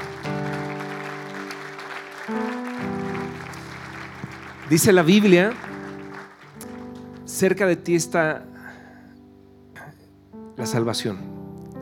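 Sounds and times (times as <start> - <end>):
audience applauding: 0.0 - 7.5
sustained keyboard chords: 0.0 - 11.7
speech: 2.3 - 2.6, 4.7 - 5.8, 7.4 - 8.5, 10.6 - 11.3.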